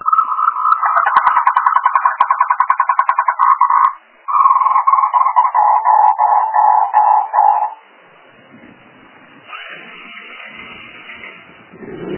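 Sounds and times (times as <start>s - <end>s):
frog croaking in rattling pulses: 0.0s - 7.8s.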